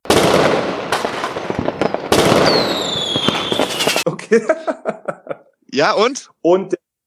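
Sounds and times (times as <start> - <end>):
fireworks sound effect with crackling, pops and bangs: 0.0 - 4.1
whistling firework rocket sweeping downward: 0.1 - 4.0
laughter: 4.0 - 5.6
speech: 4.1 - 5.1, 5.7 - 6.8.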